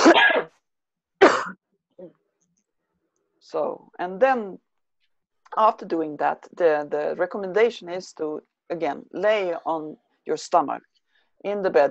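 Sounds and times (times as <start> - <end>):
person coughing into the elbow: 0.0 - 0.5, 1.2 - 1.6
speech: 3.5 - 4.7, 5.6 - 11.8.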